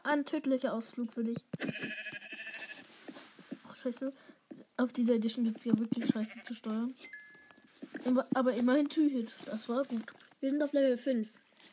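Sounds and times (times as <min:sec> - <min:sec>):
speech: 0:00.0 - 0:02.1, 0:03.8 - 0:07.3, 0:08.0 - 0:11.4
sheep bleating: 0:01.7 - 0:02.9, 0:06.0 - 0:06.7.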